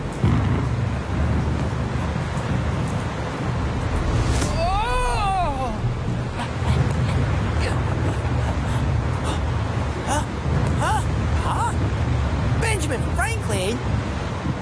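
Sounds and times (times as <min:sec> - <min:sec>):
thunderstorm roaring: 0:00.0 - 0:14.6
deep rumbling thunder: 0:00.2 - 0:09.1.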